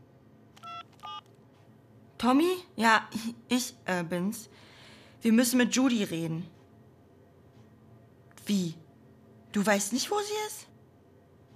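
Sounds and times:
telephone keypad DTMF tones as a number is dialed: 0:00.6 - 0:01.3
speech: 0:02.2 - 0:06.6, 0:08.5 - 0:08.8, 0:09.5 - 0:10.7.

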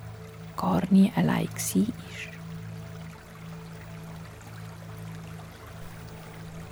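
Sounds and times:
low hum: 0:00.0 - 0:06.7
water trickling with faint splashes: 0:00.0 - 0:06.7
speech: 0:00.6 - 0:02.4.

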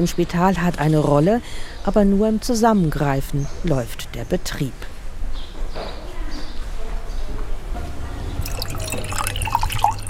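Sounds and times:
speech: 0:00.0 - 0:04.9
water pouring into a drinking glass: 0:08.4 - 0:10.0.

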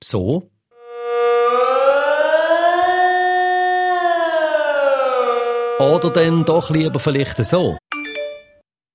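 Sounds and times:
speech: 0:00.1 - 0:00.6, 0:05.8 - 0:07.8
civil defense warning siren wailing: 0:00.7 - 0:07.8.

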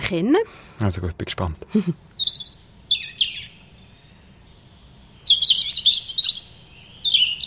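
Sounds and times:
speech: 0:00.1 - 0:02.2
European robin singing high thin warbling phrases: 0:01.8 - 0:07.4.

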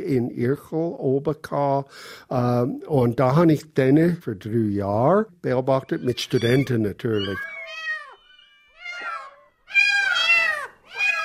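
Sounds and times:
speech: 0:00.0 - 0:07.6
cats meowing: 0:05.7 - 0:11.2.

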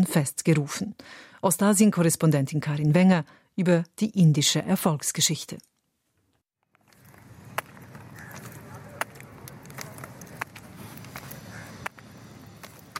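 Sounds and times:
speech: 0:00.0 - 0:05.7
steady outdoor noise: 0:00.0 - 0:12.9
slow footsteps walking with crutches: 0:06.6 - 0:12.9.

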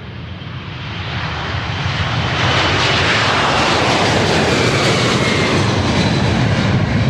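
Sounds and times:
airplane engine roaring at airport runway edge: 0:00.0 - 0:07.0.

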